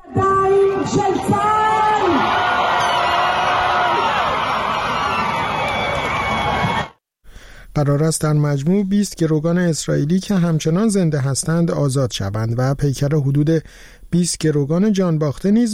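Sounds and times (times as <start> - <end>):
crowd of families cheering in the hostages square in Tel Aviv: 0.0 - 7.0
speech: 0.8 - 1.5, 7.8 - 15.7
high whoops and screams: 1.5 - 7.0.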